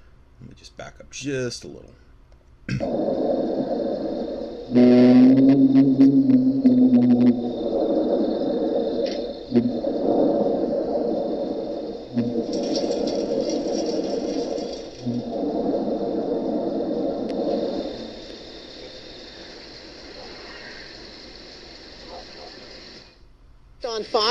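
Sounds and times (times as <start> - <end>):
speech: 0.5 - 2.1, 2.7 - 4.0, 4.7 - 6.4
mysterious low hum recorded on CCTV audio in North St. Louis County: 1.9 - 23.8
thin high whine: 2.7 - 23.2
brief steady tonal note: 2.8 - 18.1.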